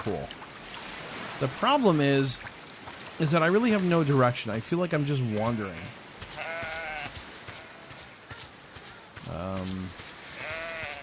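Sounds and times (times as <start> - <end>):
speech: 0.0 - 0.4, 1.4 - 2.5, 3.2 - 6.0, 9.3 - 10.0
sheep bleating in a video game: 5.8 - 8.0, 10.3 - 11.0.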